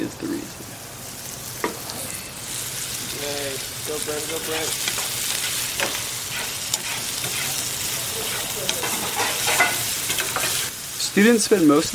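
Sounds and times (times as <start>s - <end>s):
carrots and leeks frying in a pan at a cooking school in Taiwan: 0.0s - 11.9s
speech: 3.9s - 5.0s, 5.8s - 6.0s, 11.2s - 11.9s
scrapes and clicks of stirring: 4.8s - 7.7s, 8.3s - 10.7s.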